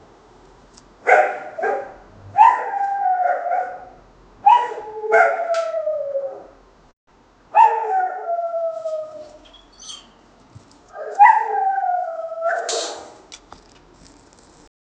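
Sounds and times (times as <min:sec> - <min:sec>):
wind: 0:00.0 - 0:14.7
distant dog barking: 0:01.0 - 0:05.7, 0:07.6 - 0:08.3, 0:12.4 - 0:13.2.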